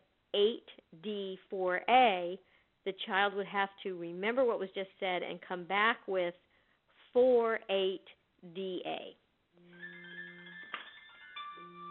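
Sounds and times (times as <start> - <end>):
speech: 0.4 - 6.5, 7.1 - 9.7
mobile phone ringing with a bright electronic ringtone: 9.6 - 11.8.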